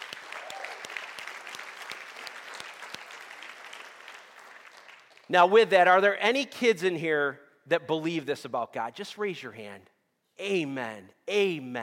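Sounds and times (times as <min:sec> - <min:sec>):
church audience applauding: 0:00.0 - 0:05.3
speech: 0:05.3 - 0:11.8.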